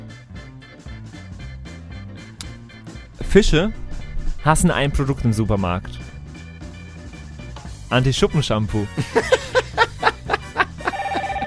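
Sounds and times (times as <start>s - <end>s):
speech: 3.3s - 3.8s, 4.4s - 6.1s, 7.9s - 9.5s
laughter: 8.8s - 11.4s
telephone ringing with warbling electronic pulses: 10.8s - 11.4s.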